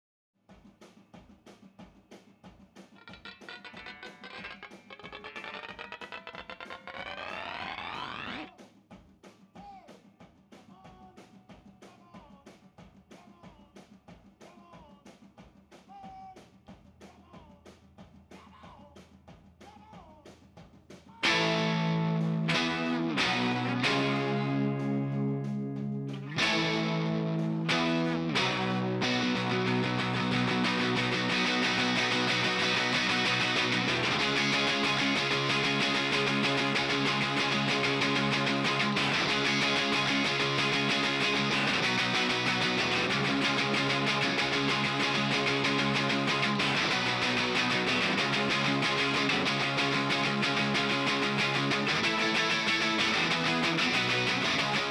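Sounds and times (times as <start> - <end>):
guitars: 3.0 - 8.5, 21.2 - 54.9.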